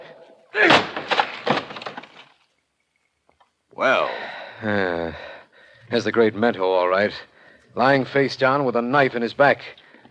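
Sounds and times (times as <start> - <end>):
speech: 0.6 - 0.8, 3.8 - 5.3, 5.9 - 10.0
door splintering crash as it is forced open: 0.6 - 2.4
rattling clattering debris: 0.6 - 2.6.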